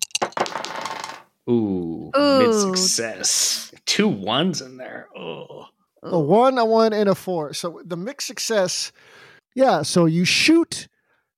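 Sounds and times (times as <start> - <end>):
dice clattering and rolling across a hard surface: 0.0 - 1.3
speech: 1.5 - 11.3.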